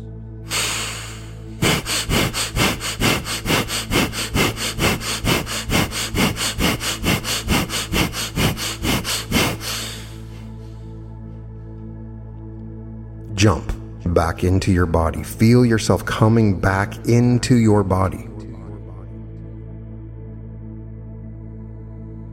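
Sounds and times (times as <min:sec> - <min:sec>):
rapid forceful fire breaths with sharp nasal exhalations: 0:00.5 - 0:10.8
speech: 0:13.4 - 0:18.3.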